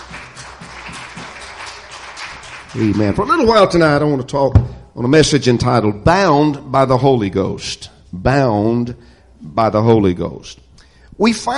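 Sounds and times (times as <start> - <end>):
church congregation clapping hands in praise: 0.0 - 4.0
speech: 2.7 - 10.6, 11.2 - 11.5.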